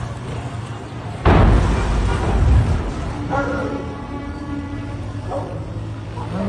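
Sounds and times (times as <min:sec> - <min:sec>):
sustained roar after fuel tanker explosion: 0:00.2 - 0:06.2
steady low rumbling noise: 0:01.1 - 0:06.4
fuel tanker explosion: 0:01.2 - 0:04.0.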